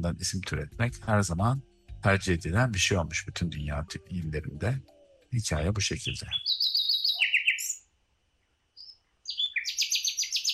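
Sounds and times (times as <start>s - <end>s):
speech: 0.0s - 6.6s
bulbul singing: 4.5s - 10.5s.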